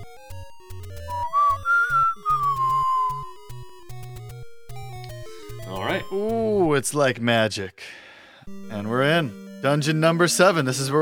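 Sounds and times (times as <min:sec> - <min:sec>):
video game whistle tune over synthesized bass and chords: 0:00.8 - 0:04.4
speech: 0:06.1 - 0:08.0, 0:08.7 - 0:11.0.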